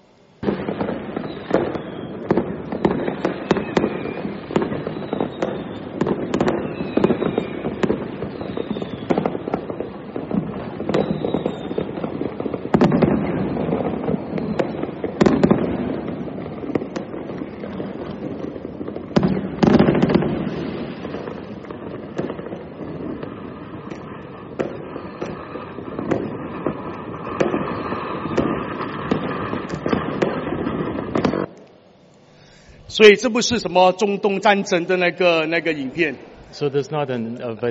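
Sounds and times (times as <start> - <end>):
whistling rockets rising: 0.0 - 31.6
firecrackers and fireworks crackling and booming: 0.0 - 37.6
speech: 33.0 - 37.6.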